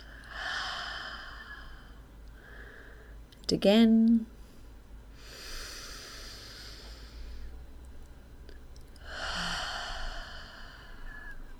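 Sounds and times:
deep breath in through the nose and out through the mouth: 0:00.0 - 0:03.2, 0:05.2 - 0:07.6, 0:09.0 - 0:11.5
speech: 0:03.5 - 0:04.4.

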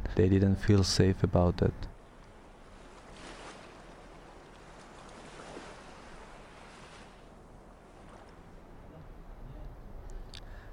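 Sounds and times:
speech: 0:00.2 - 0:01.9
sea waves washing in at the shore: 0:01.9 - 0:09.3.

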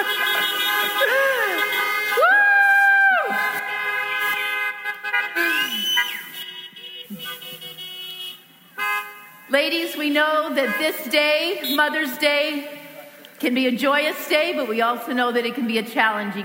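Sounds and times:
car horns honking in an outdoor parking lot: 0:00.0 - 0:02.2, 0:03.3 - 0:13.0
speech: 0:09.6 - 0:12.8, 0:13.4 - 0:16.4.

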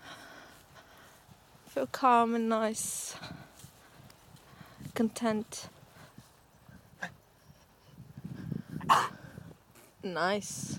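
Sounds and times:
speech: 0:01.8 - 0:03.4, 0:05.0 - 0:05.8, 0:10.0 - 0:10.7
dog coughing: 0:08.9 - 0:09.1.

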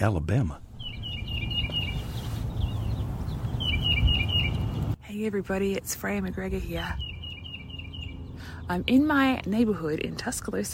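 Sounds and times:
speech: 0:00.0 - 0:00.6, 0:05.2 - 0:07.1, 0:08.7 - 0:10.7
tufted titmouse calling in a Tuscaloosa, Alabama neighborhood: 0:00.7 - 0:05.0, 0:06.7 - 0:09.2.

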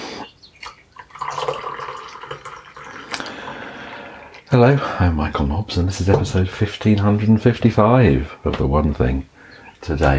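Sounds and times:
tea pouring into a cup: 0:00.6 - 0:04.5
speech: 0:04.5 - 0:10.1.

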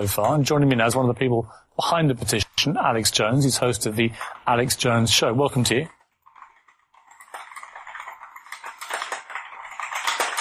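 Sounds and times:
speech: 0:00.0 - 0:06.0
fast typing on a computer keyboard: 0:04.0 - 0:10.4.

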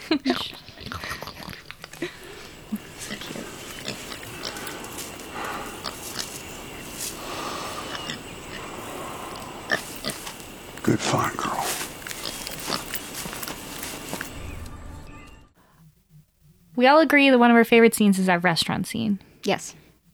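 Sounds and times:
pig snuffling and grunting: 0:00.2 - 0:14.3
speech: 0:16.8 - 0:19.8.

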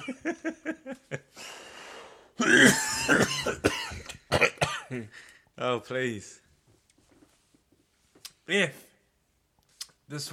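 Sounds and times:
long raspy wheezing intake of breath: 0:01.4 - 0:02.4
throat-clearing: 0:02.4 - 0:05.0
person coughing with short hacking coughs: 0:02.4 - 0:05.1
speech: 0:05.7 - 0:06.4, 0:08.5 - 0:08.8, 0:10.1 - 0:10.3.

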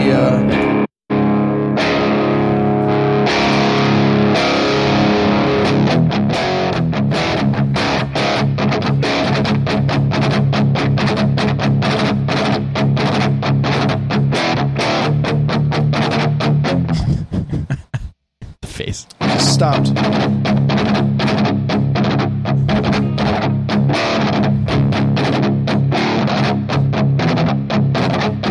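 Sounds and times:
heavily distorted electric guitar in drop D playing metal riffs: 0:00.0 - 0:17.8, 0:18.5 - 0:28.4
laughter: 0:16.9 - 0:18.6.

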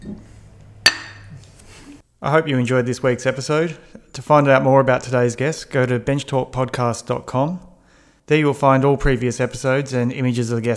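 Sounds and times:
glass beer bottles clinking in a toast: 0:00.0 - 0:02.0
speech: 0:02.2 - 0:07.7, 0:08.3 - 0:10.7.

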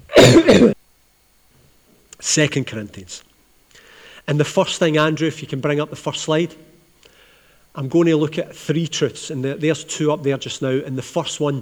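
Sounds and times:
harsh throaty coughs: 0:00.1 - 0:00.8
speech: 0:00.3 - 0:00.8, 0:02.2 - 0:03.3, 0:04.3 - 0:06.7, 0:07.8 - 0:11.6.

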